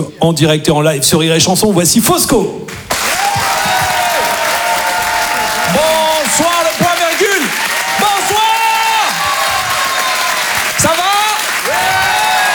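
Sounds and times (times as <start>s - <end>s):
speech: 0.0s - 3.0s
live comedy club audience clapping: 2.9s - 12.5s.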